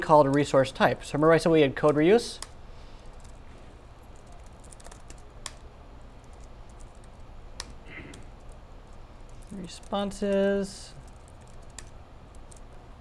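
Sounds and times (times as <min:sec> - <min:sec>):
speech: 0:00.0 - 0:02.5, 0:09.9 - 0:11.0
steady low hum: 0:00.0 - 0:12.9
typing code on a computer keyboard during a live demo: 0:04.1 - 0:05.6, 0:06.2 - 0:08.6, 0:09.2 - 0:12.7.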